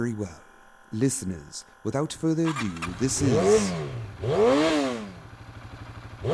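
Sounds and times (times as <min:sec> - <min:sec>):
speech: 0:00.0 - 0:04.9
motorcycle engine cranking, revving and idling: 0:02.4 - 0:06.3.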